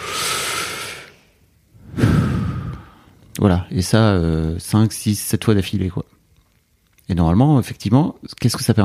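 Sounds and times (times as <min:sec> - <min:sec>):
long deep breath drawn in: 0:00.0 - 0:03.2
speech: 0:03.4 - 0:06.2, 0:07.1 - 0:08.8.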